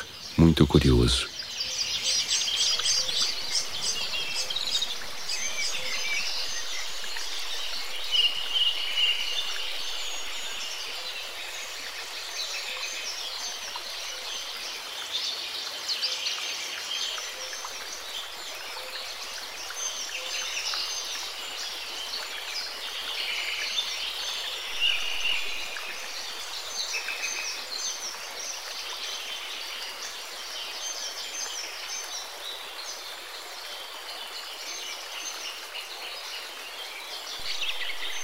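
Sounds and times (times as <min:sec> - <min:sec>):
dense chorus of birds chirping and singing in garden trees: 0:00.0 - 0:14.8, 0:17.0 - 0:30.1, 0:37.0 - 0:38.2
faint hiss of outdoor ambience: 0:00.0 - 0:38.2
speech: 0:00.4 - 0:01.4.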